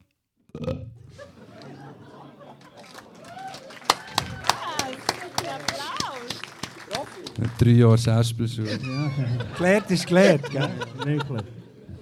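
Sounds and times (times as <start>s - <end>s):
bottle genie giving a loud low drawn-out burp: 0.5s - 1.1s
speech: 0.6s - 1.3s, 7.3s - 11.6s
laughter: 1.1s - 6.0s, 8.4s - 12.0s.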